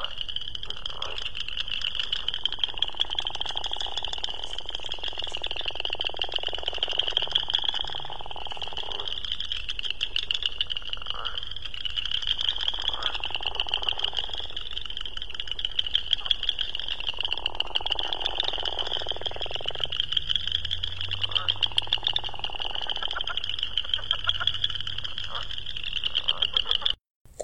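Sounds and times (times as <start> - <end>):
steady high insect-like drone: 0.0 - 25.5
dusky gopher frog mating call: 0.0 - 27.4.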